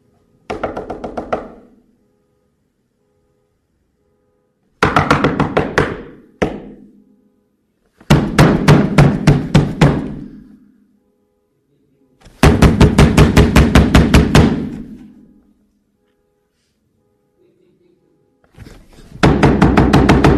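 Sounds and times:
knocking on a door: 0:00.5 - 0:01.7, 0:04.8 - 0:06.9, 0:08.1 - 0:10.3, 0:12.4 - 0:14.9, 0:19.2 - 0:20.3.

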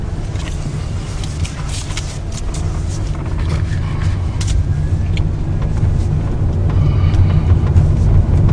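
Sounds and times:
gravelly tire noise on the road: 0:00.0 - 0:08.5
heavy truck engine rumbling on the road: 0:00.0 - 0:08.5.

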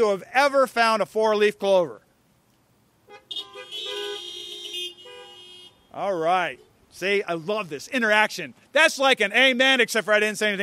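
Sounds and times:
speech: 0:00.0 - 0:02.0, 0:06.0 - 0:10.6
car horns honking: 0:03.0 - 0:06.8.

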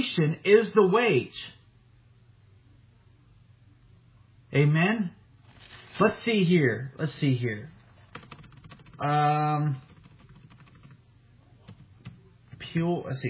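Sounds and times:
speech: 0:00.1 - 0:01.6, 0:04.5 - 0:05.2, 0:06.0 - 0:07.8, 0:09.0 - 0:09.9, 0:12.7 - 0:13.2
typing on a computer keyboard: 0:08.1 - 0:11.0, 0:11.6 - 0:12.7.

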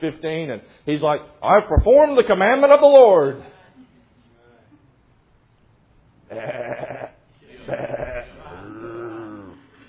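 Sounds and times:
speech: 0:00.0 - 0:03.6, 0:06.3 - 0:06.8
sheep bleating: 0:06.3 - 0:08.9.

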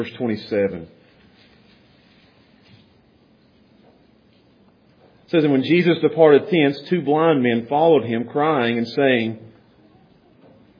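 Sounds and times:
speech: 0:00.0 - 0:01.0, 0:05.3 - 0:09.5
many Bible pages turned by an audience: 0:01.0 - 0:03.7.

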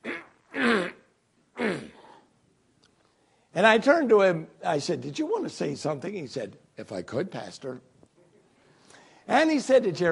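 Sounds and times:
person imitating throat clearing of someone with a cold: 0:00.0 - 0:02.2
speech: 0:03.6 - 0:07.9, 0:09.3 - 0:10.0.

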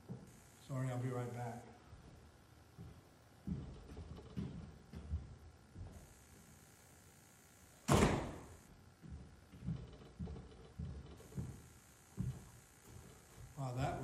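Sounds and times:
steady hum: 0:00.0 - 0:14.0
speech: 0:00.7 - 0:01.8
door blowing open and banging: 0:07.9 - 0:08.5.

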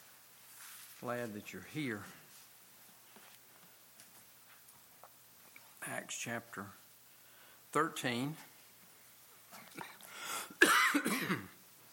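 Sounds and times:
speech: 0:01.0 - 0:02.2, 0:05.9 - 0:06.8, 0:07.7 - 0:08.5, 0:10.6 - 0:11.5
speaker coughing during a church service: 0:09.5 - 0:11.6.

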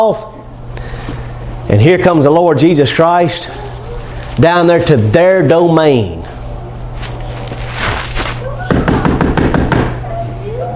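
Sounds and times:
speech: 0:00.0 - 0:00.4, 0:01.7 - 0:03.7, 0:04.4 - 0:06.2
rapid sharp knocks on a door: 0:08.7 - 0:10.0.

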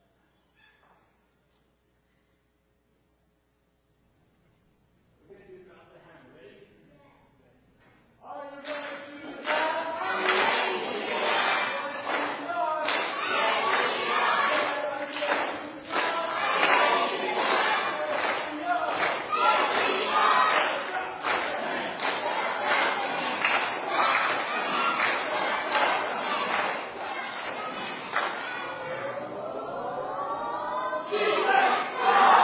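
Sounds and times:
group of children shouting a team cheer: 0:09.5 - 0:32.4.

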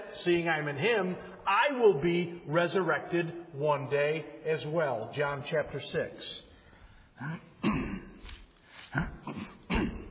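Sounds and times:
speech: 0:00.2 - 0:06.5, 0:07.2 - 0:07.8, 0:08.9 - 0:09.5
person clearing throat harshly: 0:07.2 - 0:10.0
person coughing: 0:07.2 - 0:10.0.

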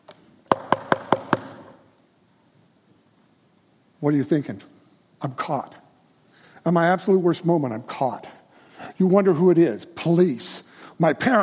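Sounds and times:
firm knocking on a door: 0:00.5 - 0:01.8
speech: 0:04.0 - 0:05.8, 0:06.6 - 0:08.3, 0:09.0 - 0:11.4.

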